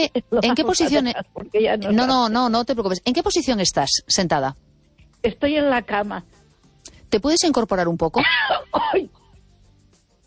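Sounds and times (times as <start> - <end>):
speech: 0.0 - 4.6, 5.2 - 6.4, 7.1 - 9.2
raspy throat clear with cough-like burst: 8.3 - 9.2.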